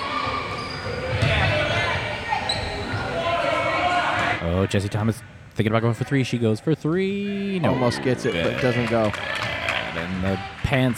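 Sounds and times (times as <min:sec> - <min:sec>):
crowd murmur and voices: 0:00.0 - 0:06.3, 0:07.1 - 0:10.9
basketball bouncing during a women's basketball game: 0:01.0 - 0:02.0
speech: 0:04.5 - 0:10.9.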